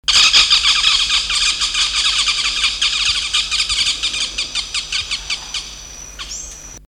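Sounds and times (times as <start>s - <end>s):
blue-throated parakeet calling: 0.0s - 6.8s.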